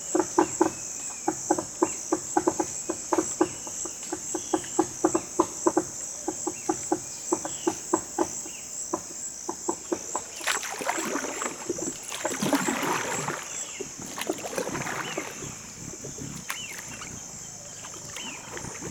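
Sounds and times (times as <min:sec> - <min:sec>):
high insect drone in the Amazon rainforest: 0:00.0 - 0:18.8
dugout canoe paddles splashing on a forest river: 0:09.7 - 0:18.8.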